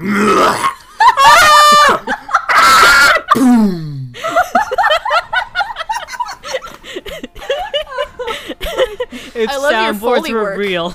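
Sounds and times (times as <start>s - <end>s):
speech: 0.0s - 0.7s, 9.4s - 10.9s
voice imitating a loud strained scream: 0.0s - 3.6s
laughter: 0.8s - 3.4s, 4.2s - 10.0s.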